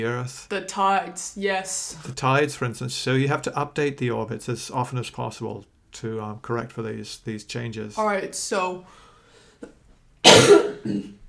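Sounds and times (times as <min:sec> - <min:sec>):
speech: 0:00.0 - 0:09.0, 0:09.6 - 0:11.2
person coughing: 0:10.2 - 0:11.2.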